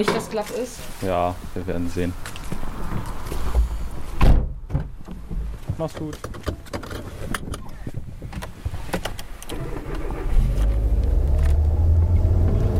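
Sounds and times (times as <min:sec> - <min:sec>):
speech: 0:00.0 - 0:03.0, 0:05.8 - 0:06.4
clicks and thumps inside a car: 0:04.2 - 0:12.7
car engine starting and driving off: 0:09.5 - 0:12.7.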